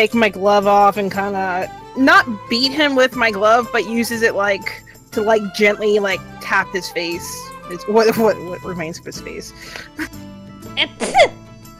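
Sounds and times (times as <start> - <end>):
speech: 0.0 - 11.4
sneeze: 10.8 - 11.4.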